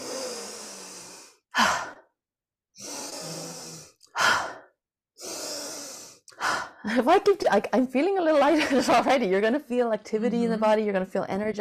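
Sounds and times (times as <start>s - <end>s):
deep breathing during a breathing exercise: 0.0s - 2.2s, 2.8s - 6.9s
speech: 6.8s - 11.6s.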